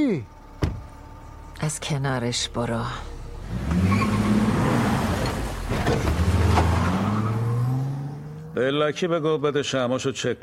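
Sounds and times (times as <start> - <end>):
speech: 0.0 - 0.4, 1.6 - 3.9, 8.6 - 10.4
rattling road noise: 0.6 - 9.3
old car engine humming and revving while driving on a road: 3.2 - 8.9.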